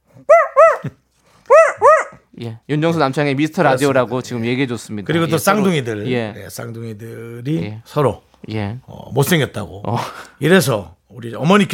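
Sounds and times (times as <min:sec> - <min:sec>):
small dog barking: 0:00.3 - 0:00.9, 0:01.5 - 0:02.2
speech: 0:02.4 - 0:11.7.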